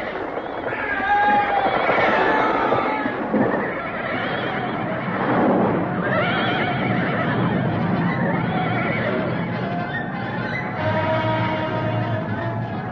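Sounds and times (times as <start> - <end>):
several horses neighing and whinnying: 0.0 - 12.9.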